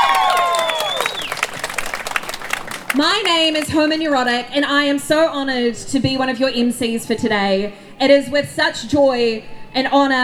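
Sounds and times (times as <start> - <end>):
crowd clapping and cheering at a community march: 0.0 - 4.5
speech: 3.0 - 10.2.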